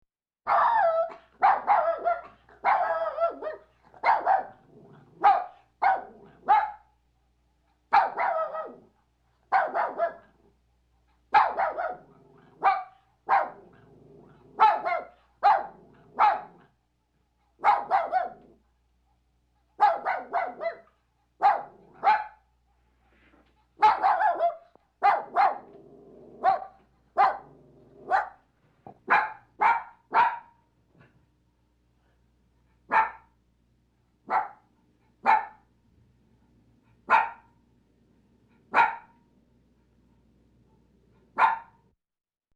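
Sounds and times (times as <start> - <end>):
puppy barking: 0.5 - 6.9, 7.9 - 8.9, 9.5 - 10.4, 11.3 - 13.8, 14.5 - 16.7, 17.6 - 18.6, 19.8 - 22.4, 23.8 - 25.8, 26.4 - 30.6, 32.9 - 33.3, 34.2 - 35.7, 37.1 - 37.5, 38.7 - 39.2, 41.3 - 41.8.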